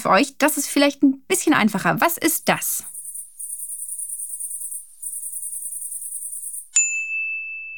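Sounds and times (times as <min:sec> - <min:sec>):
speech: 0:00.0 - 0:02.9
cicadas buzzing: 0:02.7 - 0:06.8
bright chime ringing: 0:03.3 - 0:07.7.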